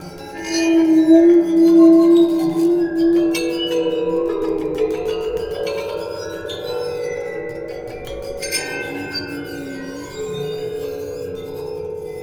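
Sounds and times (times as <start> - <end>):
metal waterphone played with a bouncing bow: 0.0 - 12.2.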